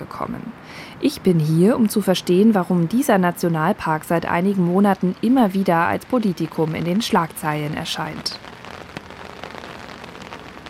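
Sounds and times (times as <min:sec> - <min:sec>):
steady rain falling in a British national park: 0:00.0 - 0:10.6
speech: 0:00.1 - 0:08.5.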